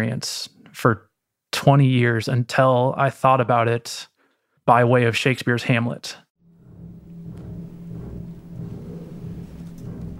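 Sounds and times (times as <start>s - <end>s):
speech: 0.0s - 4.1s, 4.7s - 6.2s
deep bass chord from double basses and piano: 6.4s - 10.1s.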